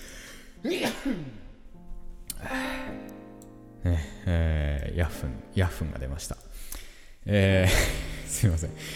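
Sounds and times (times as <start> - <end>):
speech: 0.6 - 1.4, 3.8 - 6.4, 7.2 - 8.9
stifled sneeze: 0.6 - 1.5.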